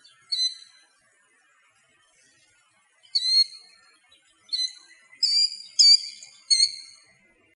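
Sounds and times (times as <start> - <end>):
killdeer piercing high calls: 0.0 - 0.7, 3.1 - 3.6, 4.5 - 7.0.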